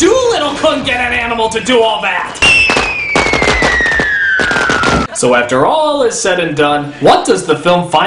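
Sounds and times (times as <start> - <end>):
speech: 0.0 - 2.6, 5.2 - 8.0
rapid series of loud explosions set off by a parrot with a toy car: 2.4 - 5.2
thin high whistle sliding downward: 2.4 - 5.2.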